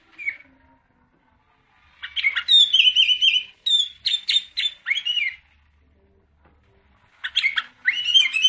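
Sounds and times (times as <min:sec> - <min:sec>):
sooty-headed bulbul singing chattering warbled whistles: 0:02.0 - 0:05.4, 0:07.3 - 0:08.4.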